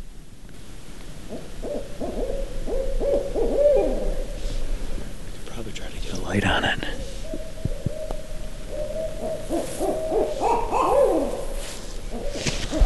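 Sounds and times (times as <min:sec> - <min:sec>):
owl hooting: 0:01.2 - 0:04.8, 0:06.6 - 0:12.8.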